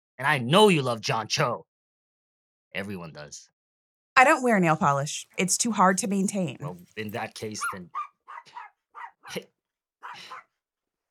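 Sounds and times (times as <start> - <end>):
speech: 0.2 - 1.7, 2.7 - 3.5, 4.2 - 8.6, 9.3 - 10.4
dog barking: 7.5 - 9.4, 10.0 - 10.5.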